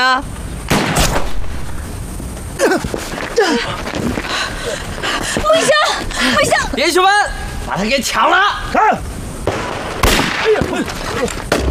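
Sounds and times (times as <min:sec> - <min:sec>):
speech: 0:00.0 - 0:00.4, 0:02.7 - 0:03.8, 0:04.7 - 0:09.1, 0:10.4 - 0:11.4
noise: 0:00.0 - 0:11.7
gunshots during an armed standoff: 0:00.7 - 0:01.5, 0:09.5 - 0:11.7
people gasping and shouting: 0:02.6 - 0:06.7.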